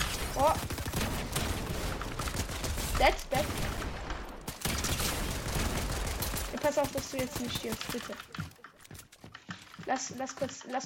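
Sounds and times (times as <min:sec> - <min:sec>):
gunfire in a video game match: 0:00.0 - 0:08.4
speech: 0:00.4 - 0:00.7, 0:03.0 - 0:03.6, 0:06.8 - 0:08.5, 0:09.9 - 0:10.8.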